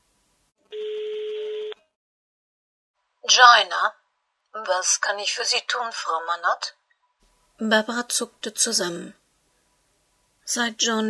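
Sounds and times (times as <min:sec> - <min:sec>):
telephone keypad DTMF tone while dialing: 0:00.8 - 0:01.8
speech: 0:03.3 - 0:04.0, 0:04.6 - 0:06.8, 0:07.6 - 0:09.2, 0:10.5 - 0:11.0.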